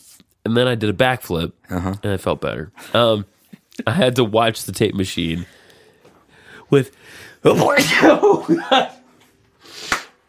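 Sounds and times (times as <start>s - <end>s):
speech: 0.5s - 5.6s, 6.7s - 9.0s
laughter: 7.5s - 9.1s
big sneeze: 7.6s - 8.2s.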